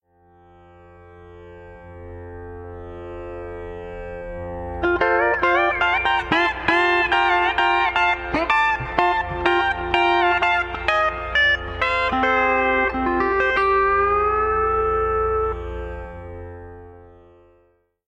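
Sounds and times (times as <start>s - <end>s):
pedal steel guitar: 1.4s - 17.5s
bouncy drone: 4.7s - 16.9s.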